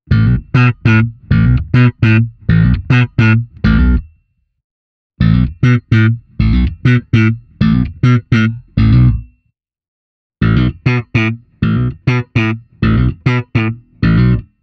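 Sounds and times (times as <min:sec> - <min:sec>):
slap bass: 0:00.1 - 0:04.1, 0:05.2 - 0:09.4, 0:10.4 - 0:14.6.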